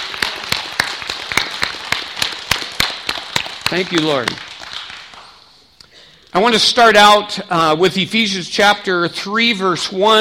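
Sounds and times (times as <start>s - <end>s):
audience applauding: 0.0s - 5.6s
speech: 3.7s - 4.5s, 6.3s - 10.1s.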